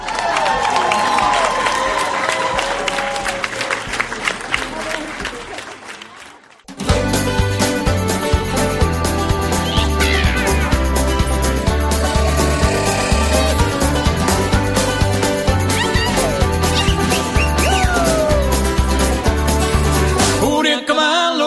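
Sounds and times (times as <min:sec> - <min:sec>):
crowd applause with cheering: 0:00.0 - 0:06.7, 0:09.6 - 0:19.3
music: 0:06.7 - 0:21.4.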